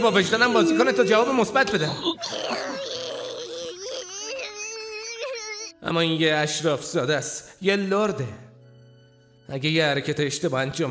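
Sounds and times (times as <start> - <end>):
speech: 0.0 - 2.8, 5.8 - 8.5, 9.5 - 10.8
young woman crying loudly with high wavering wails: 0.1 - 5.8.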